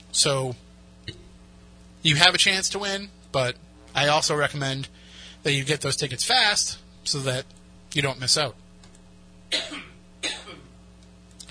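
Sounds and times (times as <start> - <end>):
faint hum: 0.0 - 11.4
speech: 0.1 - 0.6, 2.0 - 8.6
loud coughs: 9.5 - 10.7.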